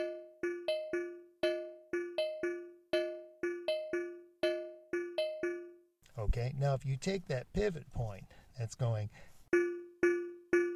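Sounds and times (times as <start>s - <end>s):
three-against-two polyrhythm on pitched bell-like struck tones: 0.0s - 5.9s, 9.6s - 10.7s
speech: 6.2s - 9.3s.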